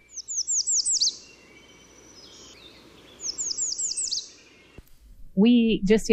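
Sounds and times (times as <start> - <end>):
American Redstart singing: 0.0 - 4.8
speech: 5.4 - 6.1.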